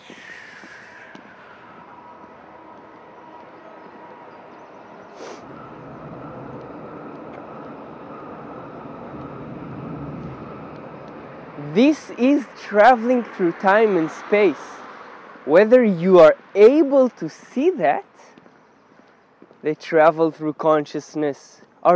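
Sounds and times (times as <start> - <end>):
faint bird calls: 0.0 - 9.4
train rumbling past: 0.0 - 16.5
speech: 11.8 - 14.8, 15.4 - 18.1, 19.6 - 21.9.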